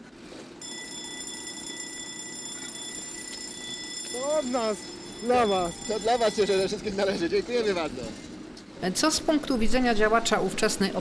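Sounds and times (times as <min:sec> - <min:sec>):
tram bell ringing as trams leave the depot: 0:00.6 - 0:08.0
speech: 0:04.2 - 0:10.9.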